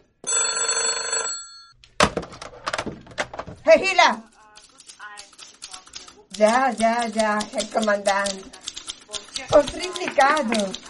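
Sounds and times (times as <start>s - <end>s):
telephone bell ringing: 0.2s - 1.8s
speech: 3.7s - 4.3s, 6.4s - 8.6s, 9.5s - 10.8s.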